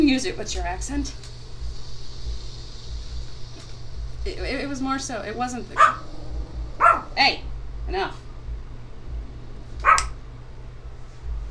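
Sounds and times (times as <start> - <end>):
low steady hum: 0.0 - 11.4
speech: 0.1 - 1.3, 4.2 - 6.1, 7.2 - 8.2
puppy barking: 5.8 - 6.1, 6.8 - 7.1, 9.8 - 10.2.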